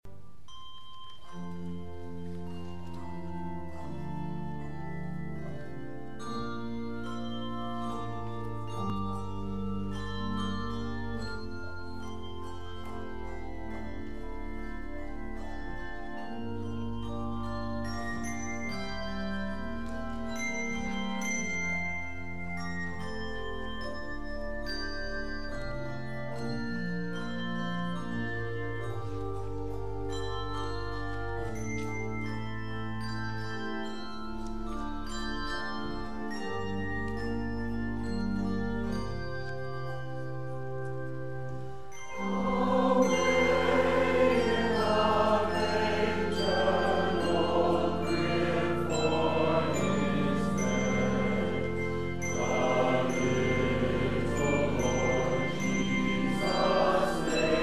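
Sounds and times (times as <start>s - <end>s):
handbells ringing: 0.4s - 57.6s
mass choir singing: 42.1s - 57.6s.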